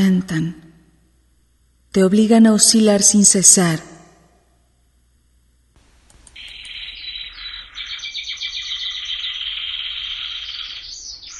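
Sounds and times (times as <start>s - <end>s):
speech: 0.0s - 0.6s, 1.9s - 3.9s
birdsong heralding dawn, shrill chirping and twittering: 6.3s - 11.3s.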